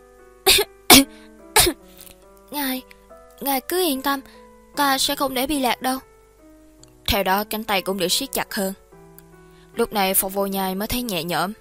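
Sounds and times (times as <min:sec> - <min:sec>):
woman dry coughing from a foul smell: 0:00.5 - 0:01.8
speech: 0:03.4 - 0:06.1, 0:07.1 - 0:08.8, 0:09.8 - 0:11.5.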